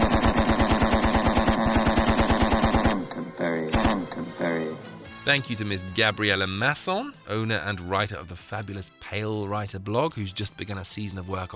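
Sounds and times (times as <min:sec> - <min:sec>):
rapid automatic gunfire in a firing-squad style burst: 0:00.0 - 0:03.1, 0:03.7 - 0:04.2
speech: 0:05.3 - 0:11.5.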